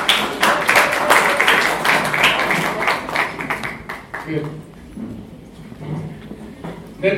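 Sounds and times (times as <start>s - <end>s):
crowd applauding: 0.0s - 4.8s
speech: 4.3s - 5.1s.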